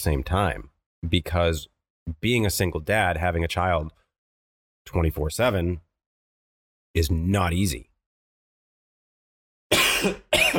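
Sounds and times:
speech: 0.0 - 4.0, 4.8 - 5.9, 6.9 - 7.9, 10.0 - 10.5
person coughing from a tickle in the throat: 9.7 - 10.5.

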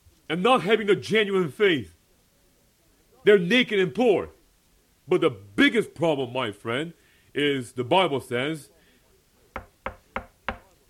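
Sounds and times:
speech: 0.3 - 2.0, 3.2 - 4.4, 5.1 - 8.7
sharp knocking on a door: 9.6 - 10.7.

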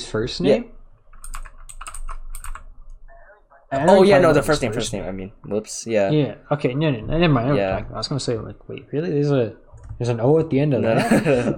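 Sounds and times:
speech: 0.1 - 0.8, 3.7 - 11.5
typing on a computer keyboard: 1.1 - 3.0
laughter: 10.8 - 11.5.

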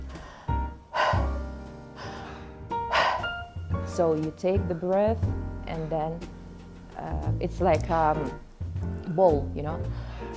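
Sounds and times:
person panting imitating a running dog: 0.0 - 1.4, 2.0 - 3.4, 9.9 - 10.3
speech: 4.0 - 6.4, 7.0 - 8.5, 9.1 - 10.1.

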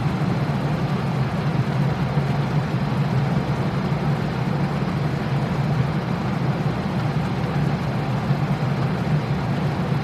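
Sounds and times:
distant fan humming: 0.0 - 10.0.

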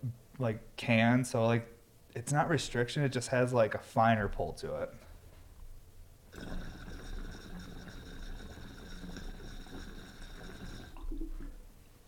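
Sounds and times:
speech: 0.0 - 5.0
water bubbling and popping through glass percolators: 6.3 - 11.7.

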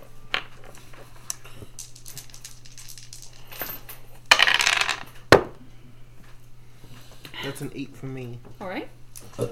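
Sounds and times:
dice clattering across a table during a tabletop role-playing game: 0.4 - 5.2
speech: 7.5 - 9.4.

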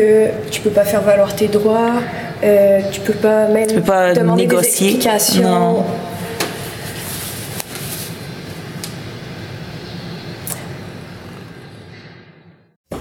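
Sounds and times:
speech: 0.0 - 6.1
indoor cafe ambience: 4.6 - 12.3.

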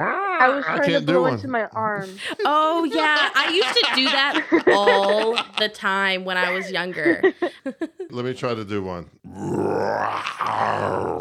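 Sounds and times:
speech: 0.0 - 11.1
laughter: 2.0 - 8.2
person imitating a lion roar turning bear-like: 9.3 - 11.1.

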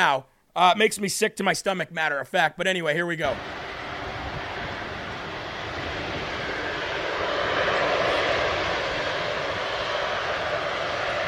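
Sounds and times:
speech: 0.0 - 3.6
arriving airplane's engines roaring: 3.2 - 11.2.

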